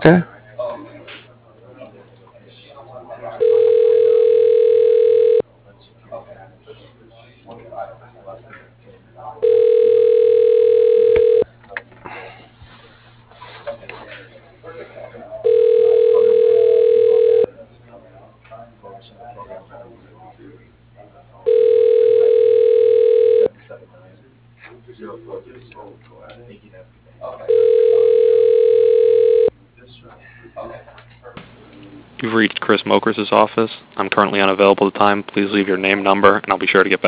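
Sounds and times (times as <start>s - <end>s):
speech: 0.0s - 0.3s, 33.0s - 37.0s
telephone line ringback tones while a call is transferred to voicemail: 3.4s - 5.4s, 9.4s - 11.4s, 15.4s - 17.5s, 21.5s - 23.5s, 27.5s - 29.5s.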